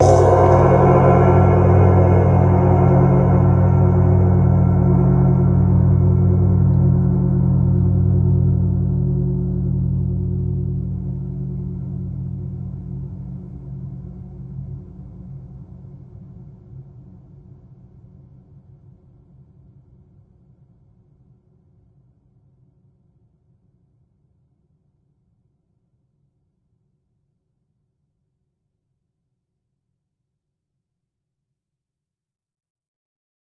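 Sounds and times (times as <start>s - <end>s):
huge gong hit: 0.0s - 15.8s.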